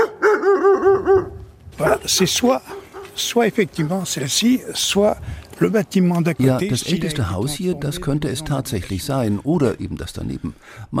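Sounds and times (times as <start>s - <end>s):
dog giving high yelping barks: 0.0s - 2.0s, 2.7s - 3.2s
speech: 2.0s - 10.9s.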